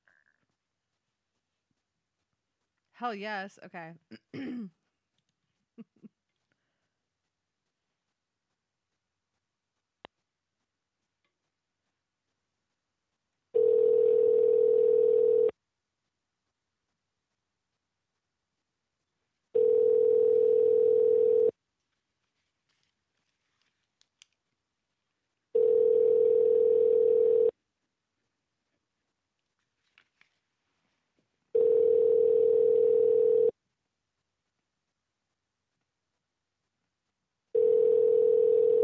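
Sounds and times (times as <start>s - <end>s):
speech: 3.0s - 4.8s
phone line ringing unanswered through a handset: 13.6s - 15.5s, 19.6s - 21.5s, 25.6s - 27.5s, 31.6s - 33.5s, 37.6s - 38.8s.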